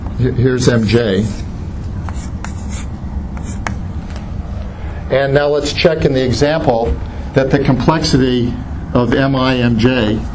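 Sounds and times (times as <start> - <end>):
speech: 0.2 - 1.5, 5.1 - 10.3
pen or marker drawing on a board in short scratchy strokes: 0.7 - 3.9.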